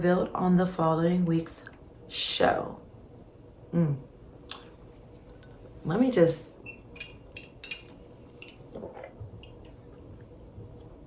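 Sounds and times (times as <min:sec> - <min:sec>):
speech: 0:00.0 - 0:02.8, 0:03.7 - 0:04.1, 0:05.8 - 0:06.6
person sipping a drink: 0:08.7 - 0:09.8.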